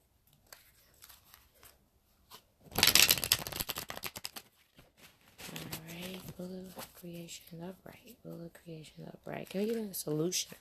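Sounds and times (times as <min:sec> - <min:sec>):
tarot cards being shuffled during a reading: 0:00.3 - 0:07.0
speech: 0:07.0 - 0:10.6.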